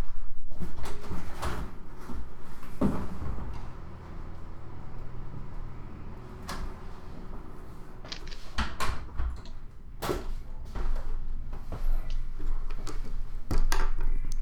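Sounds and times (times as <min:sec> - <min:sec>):
door opening and closing: 0:00.8 - 0:14.4.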